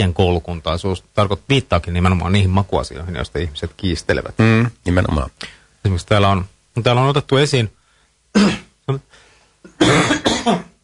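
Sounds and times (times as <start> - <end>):
speech: 0.0 - 9.2, 9.8 - 10.7
harsh coughs: 8.4 - 8.7, 9.7 - 10.8.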